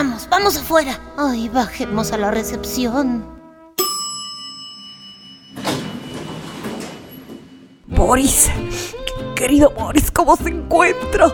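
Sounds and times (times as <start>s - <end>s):
speech: 0.0s - 3.4s, 8.0s - 11.3s
sharp metallic chime: 3.8s - 8.1s
door sliding shut with a broad rushing rumble: 5.5s - 8.1s.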